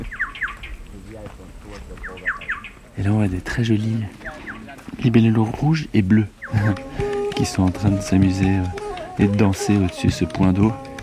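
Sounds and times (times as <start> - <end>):
bird chirps beside a watering point: 0.0 - 0.8, 1.9 - 2.9, 4.2 - 4.8, 6.2 - 10.0
birds twittering beside a watering point: 0.0 - 11.0
speech: 1.2 - 4.2, 5.0 - 10.9.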